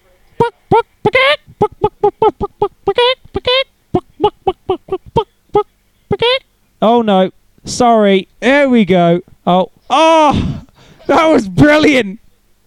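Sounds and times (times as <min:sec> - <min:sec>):
chicken clucking in a played video: 0:00.4 - 0:06.5
speech: 0:06.8 - 0:10.5, 0:11.1 - 0:12.6.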